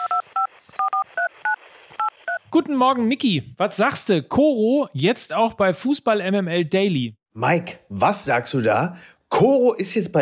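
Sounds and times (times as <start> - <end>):
telephone number being dialed with DTMF keypad tones: 0.0 - 2.4
speech: 2.5 - 10.2.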